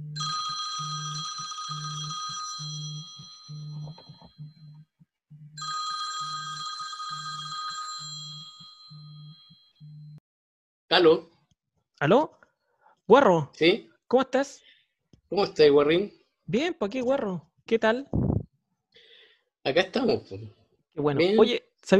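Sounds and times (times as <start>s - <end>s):
telephone ringback tone on an outgoing call: 0.0s - 4.7s, 5.6s - 10.2s
speech: 10.9s - 11.3s, 12.0s - 12.4s, 13.1s - 14.7s, 15.3s - 18.2s, 19.6s - 21.9s.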